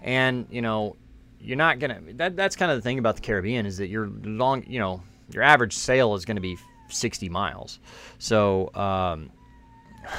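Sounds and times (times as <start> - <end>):
speech: 0.0 - 9.4
upset cat wailing meow: 6.3 - 7.1, 9.2 - 10.1.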